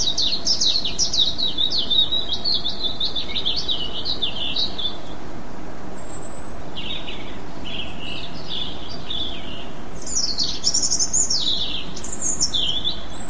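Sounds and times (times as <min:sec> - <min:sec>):
European robin singing: 0:00.0 - 0:13.2.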